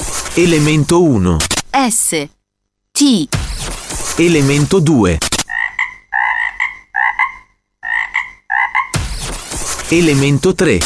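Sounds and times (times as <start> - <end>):
broad hissing noise: 0.0 - 2.2, 3.3 - 5.5, 9.0 - 10.8
speech: 0.4 - 2.4, 3.0 - 3.6, 4.2 - 5.3, 9.9 - 10.8
frogs croaking: 5.4 - 9.0.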